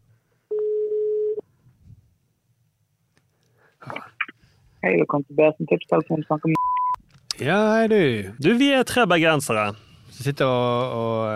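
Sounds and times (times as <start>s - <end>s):
telephone ringing tone while placing a call: 0.5s - 1.4s
speech: 4.8s - 6.6s, 7.4s - 11.3s.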